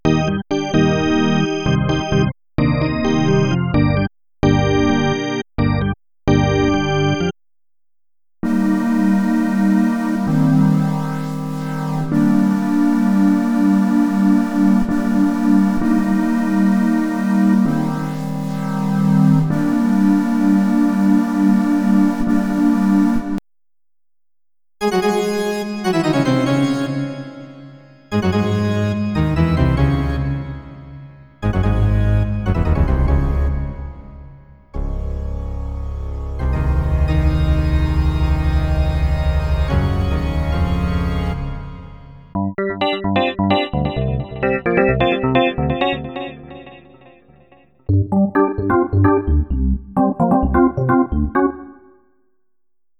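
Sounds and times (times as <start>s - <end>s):
synthesizer organ: 0.0s - 7.4s, 8.4s - 23.4s, 24.8s - 52.2s.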